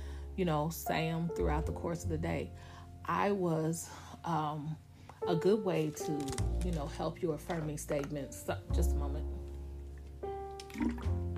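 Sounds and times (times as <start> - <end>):
speech: 0.4 - 9.4
plastic water bottle squeezed and crinkling: 5.9 - 8.2
liquid sloshing in a plastic water bottle: 10.6 - 11.3.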